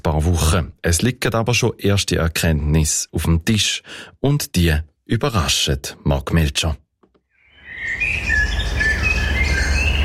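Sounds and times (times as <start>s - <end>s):
speech: 0.1s - 6.8s
blackbird singing: 7.3s - 10.0s.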